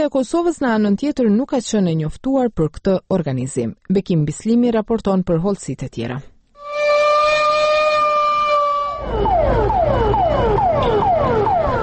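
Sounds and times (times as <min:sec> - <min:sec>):
speech: 0:00.0 - 0:06.3
civil defense alarm siren marking start of fire emergency exercise: 0:06.6 - 0:11.8.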